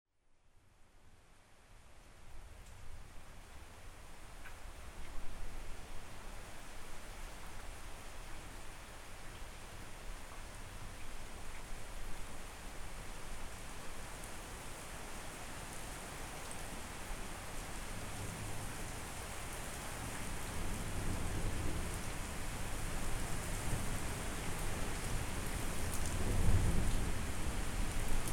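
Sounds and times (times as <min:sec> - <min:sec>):
relaxing rain: 0:00.2 - 0:28.3.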